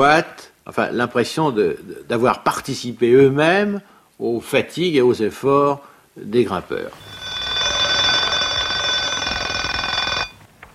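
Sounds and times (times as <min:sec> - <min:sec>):
speech: 0:00.0 - 0:07.2
alarm clock bell ringing: 0:07.0 - 0:10.4.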